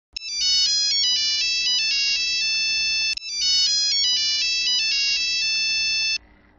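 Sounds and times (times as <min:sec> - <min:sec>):
old Nokia phone ringtone: 0:00.2 - 0:06.2.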